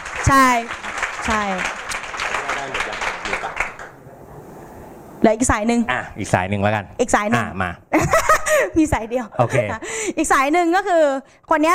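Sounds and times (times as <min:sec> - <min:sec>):
small group applauding: 0:00.0 - 0:04.0
speech: 0:00.3 - 0:01.8, 0:05.2 - 0:11.7.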